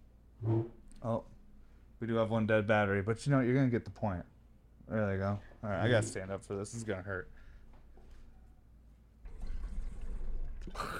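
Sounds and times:
speech: 1.0s - 1.3s, 2.0s - 4.3s, 4.9s - 7.4s, 10.6s - 10.9s
water sloshing and gurgling as someone drinks: 9.2s - 10.9s.

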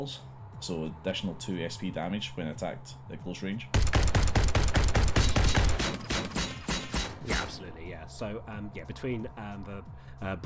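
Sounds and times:
speech: 0.0s - 3.9s, 7.2s - 10.4s
rapid automatic gunfire during tabletop role-playing game combat: 3.8s - 7.2s.

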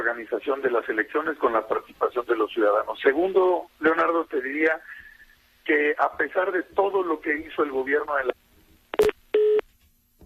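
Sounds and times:
speech: 0.1s - 5.0s, 5.6s - 8.4s
telephone busy signal after a phone call dropped: 9.0s - 9.6s.

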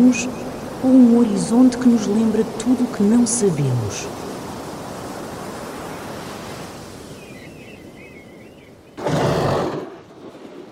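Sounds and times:
speech: 0.0s - 4.3s
ocean surf rumbling and hissing on the shore: 0.0s - 10.7s
faint bird-like chirps: 7.0s - 9.0s.

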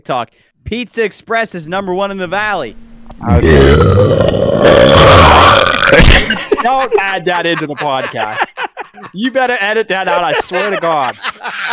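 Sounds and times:
speech: 0.0s - 11.7s
person burping into a microphone: 3.1s - 6.5s
laughter: 6.0s - 11.7s.

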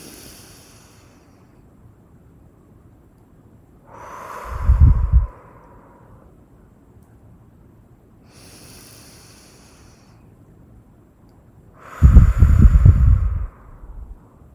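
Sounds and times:
slow deep breathing in and out: 0.0s - 1.6s, 3.8s - 6.5s, 8.2s - 10.4s, 11.7s - 14.5s.

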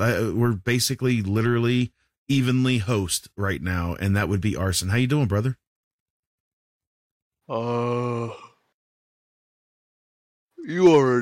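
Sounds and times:
speech: 0.0s - 5.6s, 7.5s - 8.4s, 10.6s - 11.1s
man yawning: 7.5s - 8.8s.

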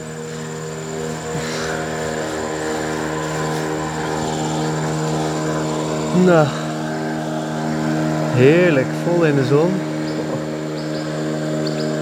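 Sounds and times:
tourist boat engine droning as a motor vessel churns past: 0.0s - 12.0s
speech: 6.2s - 6.6s, 8.4s - 9.8s.

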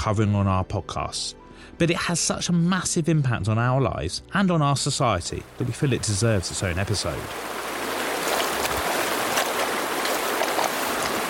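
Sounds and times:
speech: 0.0s - 7.7s
flowing stream with splashes and trickles: 5.2s - 11.2s.

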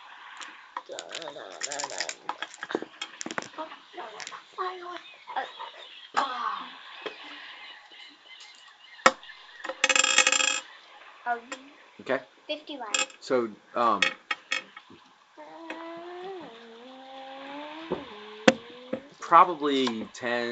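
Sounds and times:
faint voices murmuring: 0.0s - 20.5s
two ten-sided percentile dice clattering across a table: 0.4s - 3.6s, 9.7s - 10.6s
speech: 0.9s - 3.0s, 3.6s - 6.4s, 11.3s - 14.2s, 19.3s - 20.5s.

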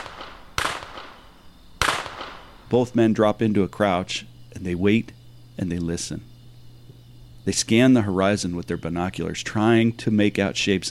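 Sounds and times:
gunshots from duck hunters' or poachers' guns in the dark: 0.0s - 2.6s
speech: 2.7s - 6.3s, 7.4s - 10.8s.

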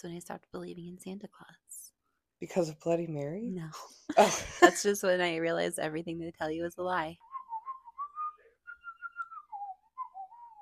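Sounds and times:
speech: 0.0s - 7.3s
person whistling a tune: 7.2s - 10.6s.

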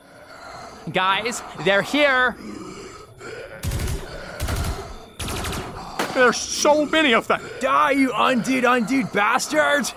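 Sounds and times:
speech: 0.8s - 2.6s, 6.2s - 9.9s
pulse rifle gunfire bursts in a fight against undead creatures: 3.6s - 5.8s.

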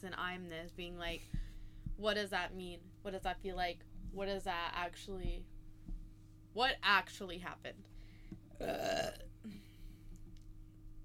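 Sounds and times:
speech: 0.0s - 1.4s, 2.0s - 5.5s, 6.6s - 7.9s, 8.6s - 9.7s
quiet hum: 0.0s - 11.0s
woman burping loudly: 8.5s - 9.7s.

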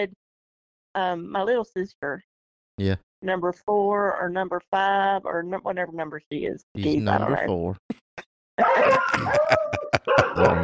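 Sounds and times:
speech: 0.0s - 0.2s, 1.0s - 8.0s, 8.6s - 10.6s
laughter: 6.8s - 7.8s, 8.6s - 10.6s
dog barking and yowling excitedly: 8.6s - 10.6s.

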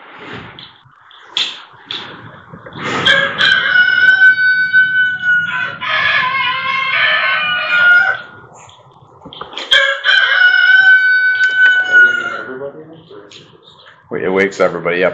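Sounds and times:
speech: 0.2s - 0.7s, 14.4s - 15.1s
softer clucking sounds: 0.6s - 14.1s
rooster crowing: 3.0s - 8.5s, 9.7s - 12.6s.

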